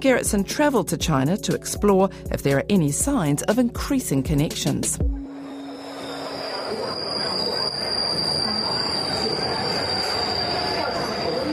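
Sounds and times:
speech: 0:00.0 - 0:05.2
high thin metro train wheel squeal: 0:05.3 - 0:11.5
metro train carriages rumbling along the track: 0:05.3 - 0:11.5.

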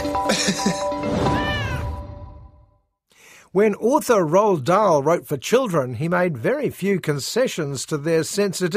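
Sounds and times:
laughter: 0:00.2 - 0:01.0
speech: 0:00.5 - 0:01.3, 0:03.5 - 0:08.7
cat meowing: 0:01.3 - 0:02.1.

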